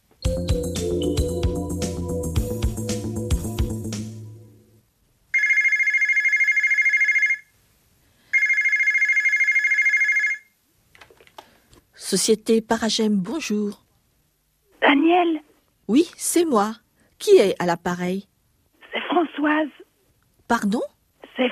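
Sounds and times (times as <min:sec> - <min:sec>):
music: 0:00.2 - 0:04.8
telephone ringing with a shrill electronic tone at a reception area: 0:05.4 - 0:07.5, 0:08.4 - 0:10.5
speech: 0:12.1 - 0:13.8, 0:15.1 - 0:18.3, 0:19.2 - 0:19.8, 0:20.5 - 0:21.4.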